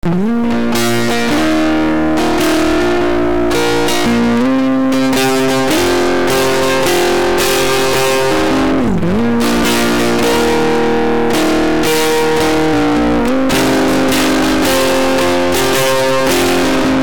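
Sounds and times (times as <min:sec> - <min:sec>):
medium distortion: 0:00.0 - 0:17.0.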